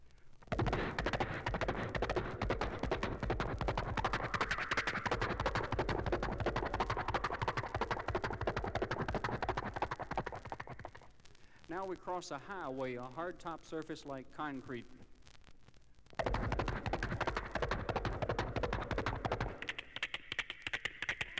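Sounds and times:
horse hooves at a fast gallop: 0:00.5 - 0:11.0, 0:16.2 - 0:21.3
speech: 0:11.8 - 0:15.0.

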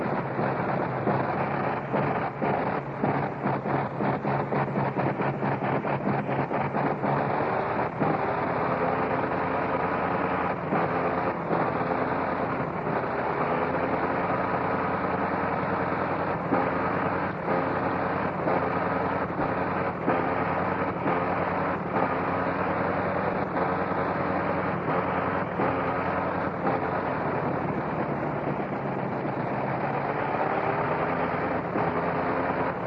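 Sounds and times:
425-horsepower Liberty aircraft engine warming up after starting: 0:00.0 - 0:32.8.

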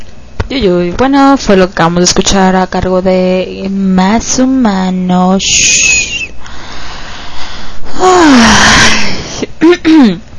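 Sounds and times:
speech: 0:00.5 - 0:05.9, 0:08.0 - 0:09.1, 0:09.7 - 0:10.3
person yawning: 0:07.8 - 0:09.5.

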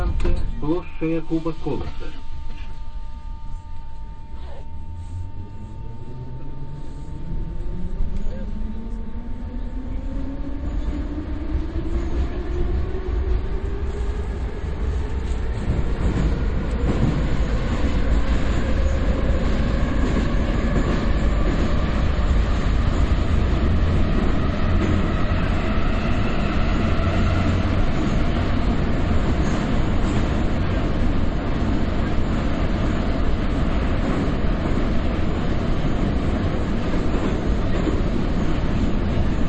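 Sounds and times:
rumble of metro train wheels and carriages: 0:00.0 - 0:39.4
speech: 0:00.7 - 0:02.2
metro train motor whine: 0:02.4 - 0:11.0.

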